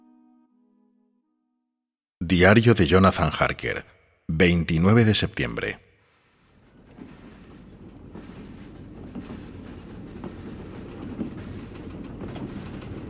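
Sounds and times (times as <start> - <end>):
speech: 2.2 - 5.8
train in motion rumbling: 2.4 - 13.0
rhythmic rail clatter of a train in motion: 6.1 - 13.0.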